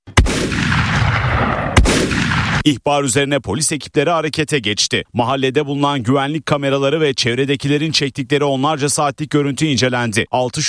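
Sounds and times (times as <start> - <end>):
pump-action shotgun and pistol gunshots fired into the air during a wedding celebration: 0.1 - 2.7
speech: 2.6 - 10.6.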